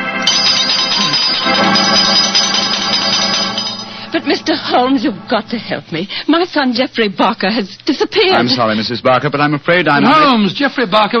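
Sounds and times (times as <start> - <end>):
doorbell ringing: 0.2 - 4.9
speech: 4.7 - 11.1.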